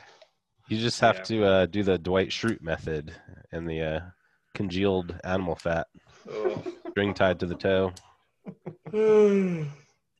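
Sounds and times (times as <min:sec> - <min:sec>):
speech: 0:00.7 - 0:09.8
laughter: 0:06.3 - 0:07.9
person yawning with breathy catches and drawn-out groan: 0:08.9 - 0:10.0.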